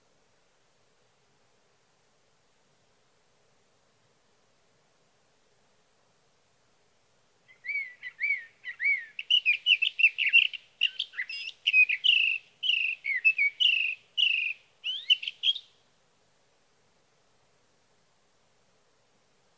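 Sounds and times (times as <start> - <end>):
male Sage thrasher singing in Sierra Valley California: 7.6 - 15.7.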